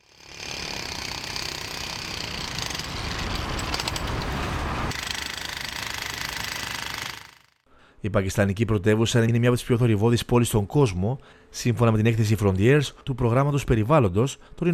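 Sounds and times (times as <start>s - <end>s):
rattling jackhammer at construction work in city centre: 0.0s - 4.3s, 4.9s - 7.6s
city traffic rumbling in city centre: 1.4s - 5.0s
speech: 8.0s - 14.7s.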